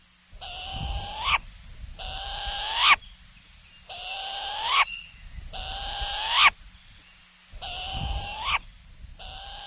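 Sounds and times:
Hawaiian short-eared owl giving harsh rasping calls: 0:00.4 - 0:03.0, 0:03.9 - 0:06.6, 0:07.6 - 0:09.6.

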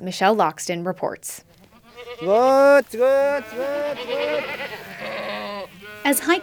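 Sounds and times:
speech: 0:00.0 - 0:05.2, 0:06.0 - 0:06.4
hundreds of grazing goats bleating loudly: 0:01.5 - 0:06.4
goat herder calling out: 0:01.9 - 0:06.4.

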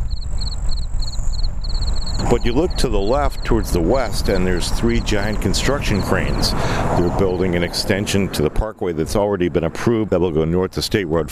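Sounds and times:
crickets chirping at the end of the Suncoast Parkway: 0:00.0 - 0:07.2
low outdoor rumble at the end of the Suncoast Parkway: 0:00.0 - 0:11.3
speech: 0:02.4 - 0:11.3.

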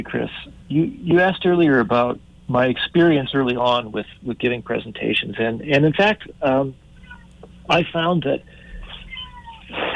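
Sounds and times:
speech: 0:00.0 - 0:06.8, 0:07.7 - 0:08.6, 0:09.7 - 0:09.9
faint steady noise: 0:00.0 - 0:09.9
cat meowing: 0:07.0 - 0:07.4, 0:08.8 - 0:09.7.

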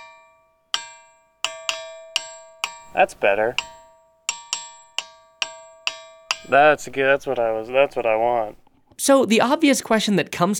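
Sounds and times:
ringing rock being struck: 0:00.8 - 0:08.6
speech: 0:02.9 - 0:03.7, 0:06.5 - 0:10.5.

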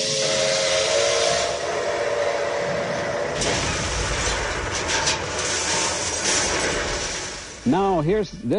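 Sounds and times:
steam locomotive whistle in a recreated crash: 0:00.0 - 0:03.8
steam hissing from a recreated steam locomotive crash: 0:00.0 - 0:07.9
clanking bursts from a recreated steam locomotive crash: 0:03.3 - 0:08.0
speech: 0:07.7 - 0:08.5.

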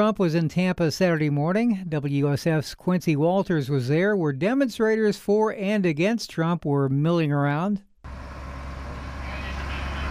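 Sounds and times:
speech: 0:00.0 - 0:07.9
faint street noise: 0:08.1 - 0:10.0
small old white school bus driving past a convention center: 0:08.1 - 0:10.0.

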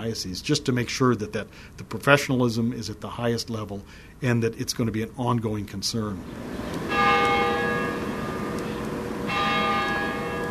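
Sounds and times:
speech: 0:00.0 - 0:06.8
outdoor ambience downtown: 0:00.0 - 0:10.4
cathedral church bell strikes: 0:06.9 - 0:10.4.

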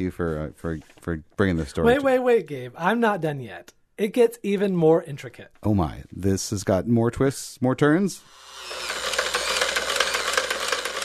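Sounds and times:
speech: 0:00.0 - 0:09.0
antique 1800s sewing machine running: 0:08.4 - 0:11.0.

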